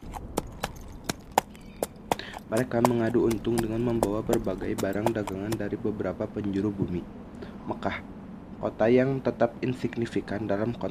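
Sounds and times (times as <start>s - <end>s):
hoofbeats from camels and horses ridden by traders in an arid sandy place: 0.0s - 5.7s
wind blowing in an arid sandy place: 0.0s - 6.3s
speech: 2.5s - 10.8s.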